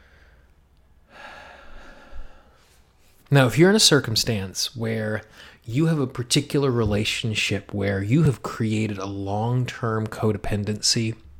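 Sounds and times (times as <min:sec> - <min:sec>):
deep breath drawn in slowly: 0:01.1 - 0:02.8, 0:05.3 - 0:05.6
speech: 0:03.3 - 0:11.3.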